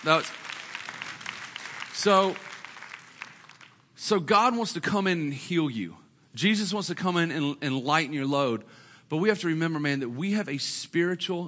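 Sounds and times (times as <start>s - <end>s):
speech: 0.0s - 0.4s, 2.0s - 2.5s, 4.0s - 11.4s
audience clapping: 0.0s - 3.9s.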